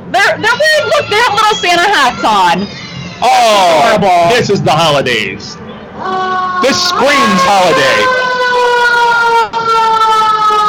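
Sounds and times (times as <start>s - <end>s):
speech: 0.3s - 8.2s
loud siren wailing at a holiday dance event: 0.4s - 10.6s.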